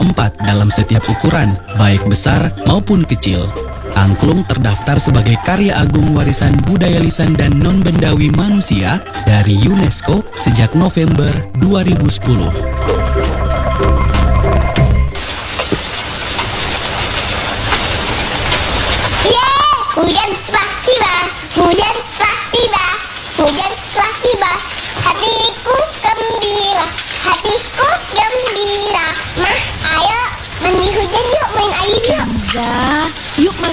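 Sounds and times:
steady rain hiss: 0:00.0 - 0:33.7
speech: 0:00.1 - 0:14.0, 0:31.2 - 0:33.7
children splashing in the rain: 0:15.2 - 0:33.7
children chattering while playing in the rain: 0:19.2 - 0:33.7.

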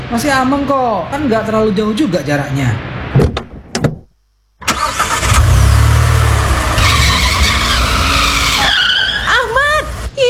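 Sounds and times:
speech: 0:00.1 - 0:02.9
car tires and engine rushing: 0:04.6 - 0:10.2
car skidding on a slippery rain-slick road in the dark: 0:04.7 - 0:10.1.

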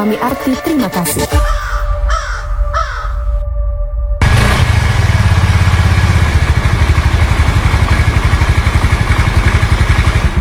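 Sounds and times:
speech: 0:00.0 - 0:01.7
crow cawing: 0:01.4 - 0:03.4
motor scooter engine running: 0:04.2 - 0:10.3.

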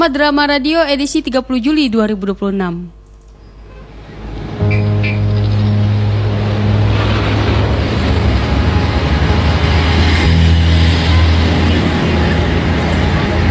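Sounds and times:
speech: 0:00.0 - 0:03.0
heavy log trucks rumbling by with rough road noise: 0:03.7 - 0:13.4.

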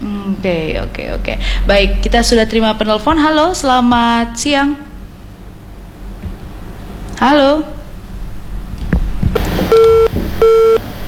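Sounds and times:
speech: 0:00.2 - 0:04.8, 0:07.2 - 0:07.8
disconnected phone line beeps: 0:09.6 - 0:11.0.

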